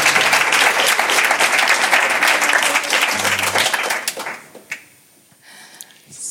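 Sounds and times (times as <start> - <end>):
audience applauding a band at a live concert: 0.0 - 4.9.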